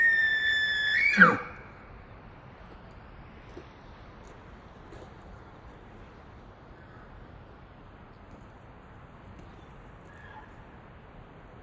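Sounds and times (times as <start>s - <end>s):
faint squeal: 0.0s - 1.7s
male elk bugling: 0.0s - 1.8s.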